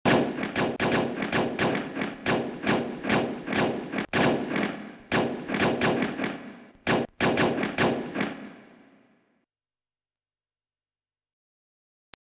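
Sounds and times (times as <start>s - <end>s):
pistol shot: 0.1s - 9.0s.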